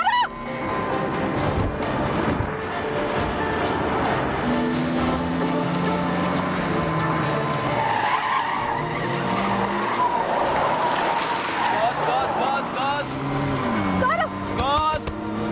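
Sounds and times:
car tires squealing: 0.0 - 15.5
car engine revving while accelerating: 0.4 - 15.5
voices talking: 11.7 - 13.2.

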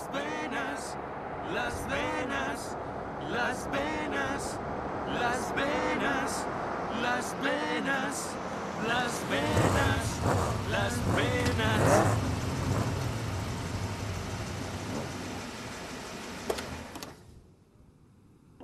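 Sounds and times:
speech: 0.1 - 12.9
car engine running and dying from lack of fuel: 9.0 - 17.2.

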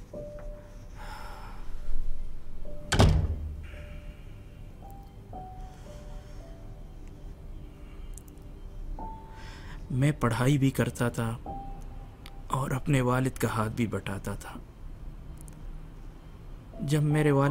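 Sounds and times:
door latch thunk as door swings open: 2.9 - 3.6
speech: 10.0 - 11.5, 12.8 - 14.7, 16.9 - 17.4.

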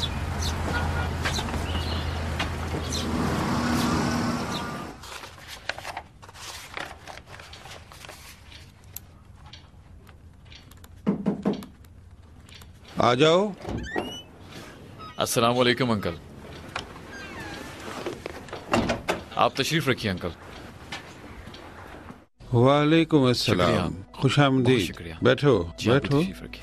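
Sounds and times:
birds chirping: 0.0 - 5.0, 13.8 - 18.0
car engine rumbling: 0.0 - 5.0
scattered clicks: 7.3 - 13.0
speech: 13.0 - 14.0, 15.2 - 16.3, 19.4 - 20.4, 22.5 - 26.6.

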